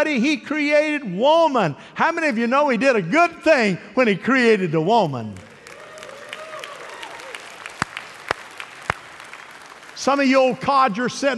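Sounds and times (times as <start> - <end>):
speech: 0.0 - 5.5, 10.0 - 11.3
audience clapping: 5.3 - 10.9.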